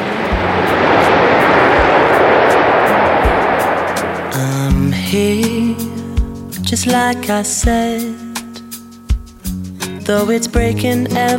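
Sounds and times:
Concorde supersonic airliner taxiing: 0:00.0 - 0:05.5
speech: 0:06.7 - 0:08.3, 0:10.1 - 0:11.3.

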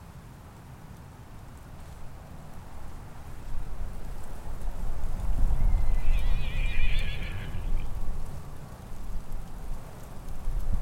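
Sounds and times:
low rumble of wind: 0:00.0 - 0:10.8
New Forest pony whinny on open moorland: 0:05.7 - 0:07.9.

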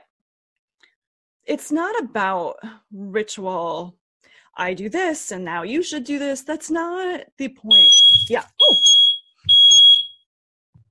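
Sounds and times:
speech: 0:01.5 - 0:04.0, 0:04.6 - 0:08.9
smoke alarm shrieking: 0:07.7 - 0:10.2.

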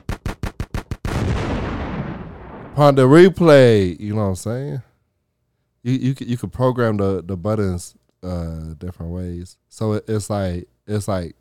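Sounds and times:
sharp gunfire-like cracks from a soundboard: 0:00.0 - 0:03.0
explosion sound effect played from a soundboard: 0:01.1 - 0:03.2
speech: 0:02.8 - 0:04.9, 0:05.8 - 0:11.3.

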